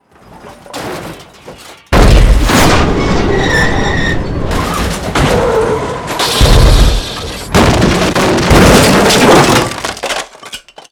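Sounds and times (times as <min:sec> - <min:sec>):
severe vehicle impact crash: 0:00.1 - 0:10.6.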